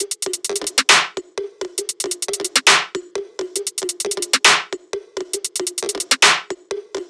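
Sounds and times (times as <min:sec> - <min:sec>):
drum top loop at 135 BPM: 0:00.0 - 0:01.2, 0:01.8 - 0:04.7, 0:05.3 - 0:06.5.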